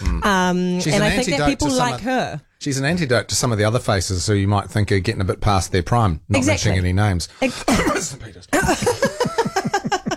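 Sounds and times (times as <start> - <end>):
speech: 0.2 - 9.4
person coughing harsh rasping coughs: 7.6 - 8.9
laughter: 7.8 - 10.1.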